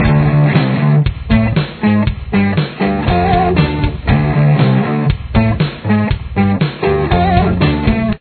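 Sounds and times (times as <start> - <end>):
guitar riff: 0.0 - 8.1.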